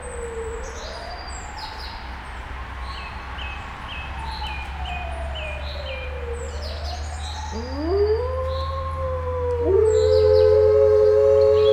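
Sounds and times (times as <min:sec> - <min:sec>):
captive Canadian white grey wolf howling at a zoo in Nyíregyháza: 0:07.5 - 0:11.7.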